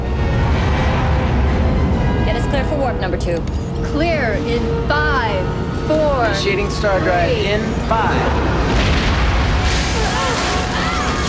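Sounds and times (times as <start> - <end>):
explosion aboard a starship hit by enemy fire amidships: 0.0 - 3.7, 7.7 - 11.2
speech: 2.6 - 8.7.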